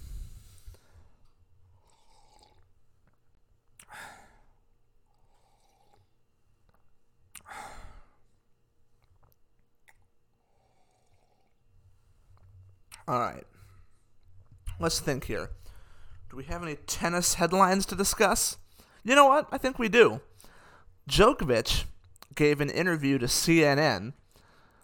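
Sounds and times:
slurping sips from a hot drink: 1.7s - 4.0s, 5.1s - 7.6s, 9.0s - 13.1s
speech: 13.1s - 13.5s, 14.8s - 15.6s, 16.3s - 20.3s, 21.1s - 24.2s.

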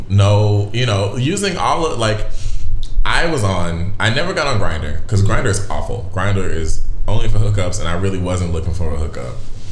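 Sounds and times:
speech: 0.1s - 2.4s, 3.0s - 9.5s
person burping: 5.2s - 5.7s.

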